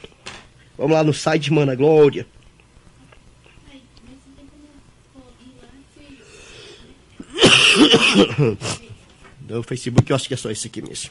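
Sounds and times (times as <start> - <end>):
speech: 0.8 - 2.4, 8.4 - 8.8, 9.5 - 11.0
person with a cough coughing roughly: 7.2 - 8.9.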